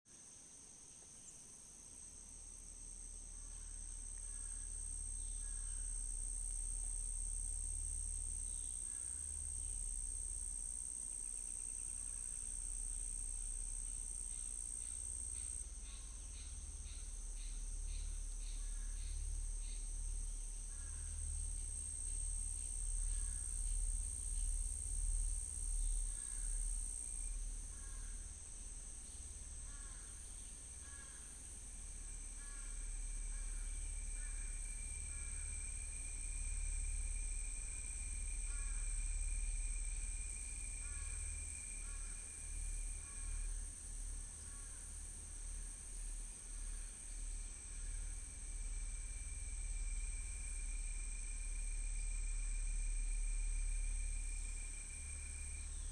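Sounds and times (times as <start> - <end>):
soft crickets chirping: 0.1 - 55.9.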